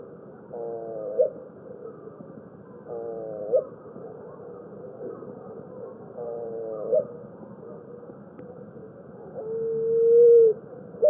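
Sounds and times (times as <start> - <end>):
Picazuro pigeon song: 0.5 - 1.4, 2.9 - 3.7, 6.2 - 7.2, 9.4 - 11.0.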